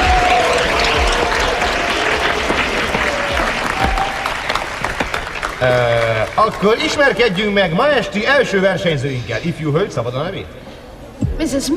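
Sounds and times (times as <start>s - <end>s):
audience applause at a dance competition: 0.0s - 7.6s
speech: 5.6s - 10.6s, 11.4s - 11.7s.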